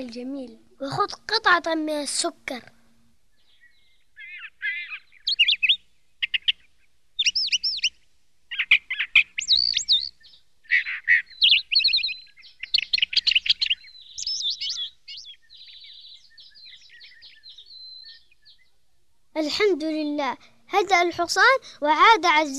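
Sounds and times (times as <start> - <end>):
speech: 0.0 - 2.8, 19.4 - 22.5
sparrow chirping and warbling: 3.3 - 20.2.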